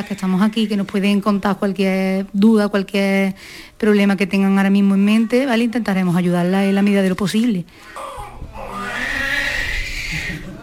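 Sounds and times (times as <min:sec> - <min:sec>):
speech: 0:00.0 - 0:08.2
newborn baby crying: 0:07.9 - 0:10.5.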